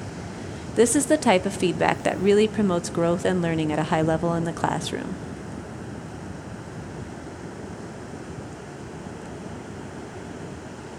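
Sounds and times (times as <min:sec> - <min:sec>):
ocean waves breaking on a beach: 0:00.0 - 0:10.9
speech: 0:00.8 - 0:05.3.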